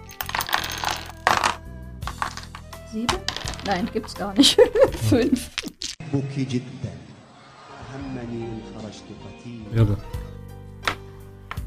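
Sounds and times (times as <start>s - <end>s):
dice being rolled: 0.0s - 4.2s, 5.4s - 6.0s
speech: 2.9s - 7.1s, 7.9s - 10.2s
laughter: 4.4s - 5.6s.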